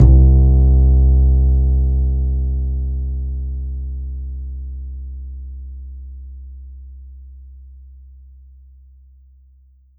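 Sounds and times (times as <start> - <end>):
bass note C2 from a synthesizer rack: 0.0 - 7.9.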